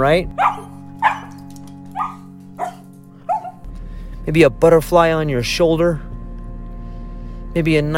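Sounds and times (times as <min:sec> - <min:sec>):
speech: 0:00.0 - 0:00.4, 0:04.3 - 0:06.1, 0:07.6 - 0:07.9
dog barking in short sharp yips: 0:00.3 - 0:03.6.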